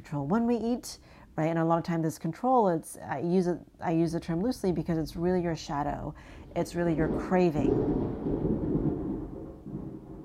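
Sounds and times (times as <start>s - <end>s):
speech: 0.1s - 8.7s
loud crackling thunder rumbling: 6.2s - 10.2s.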